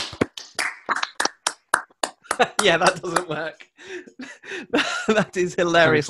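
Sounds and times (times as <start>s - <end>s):
scattered handclaps of a group applauding over a Zoom video call: 0.0s - 3.4s
laughter: 2.2s - 5.6s
speech: 2.4s - 6.0s.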